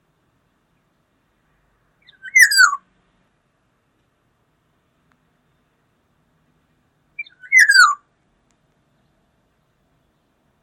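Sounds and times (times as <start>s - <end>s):
black-naped oriole fluting whistled call: 2.0s - 2.8s, 7.2s - 8.1s.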